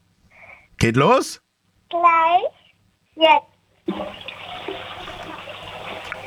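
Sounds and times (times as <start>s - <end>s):
speech: 0.8s - 2.6s, 3.2s - 4.8s
toilet flushing: 3.9s - 6.2s.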